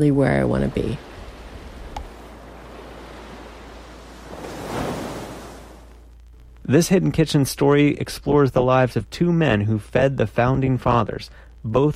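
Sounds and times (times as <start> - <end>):
speech: 0.0 - 1.1, 6.7 - 11.9
ocean waves breaking on shore: 0.0 - 6.0.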